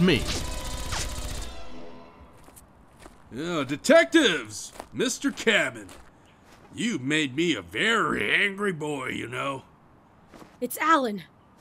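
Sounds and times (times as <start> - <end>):
speech: 0.0 - 0.5, 3.3 - 6.0, 6.7 - 9.7, 10.6 - 11.6
sci-fi laser gun zap in a shootout: 0.0 - 1.9.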